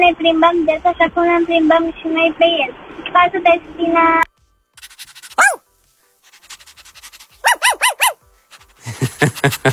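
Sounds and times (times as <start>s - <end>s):
speech: 0.0s - 4.3s, 9.2s - 9.7s
dog barking, yapping and whining in a studio: 5.2s - 5.6s, 7.2s - 8.2s
laughter: 8.8s - 9.7s.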